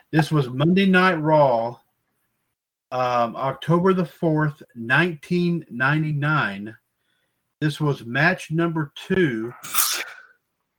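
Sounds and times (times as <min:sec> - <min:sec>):
speech: 0:00.1 - 0:01.8, 0:02.9 - 0:06.8, 0:07.6 - 0:10.0
person sneezing: 0:09.5 - 0:10.3.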